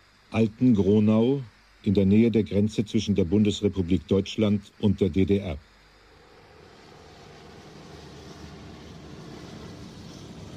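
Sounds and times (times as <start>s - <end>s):
speech: 0.3s - 5.7s
Russian helicopters approaching in a dense swarm near Altengronau: 6.1s - 10.5s.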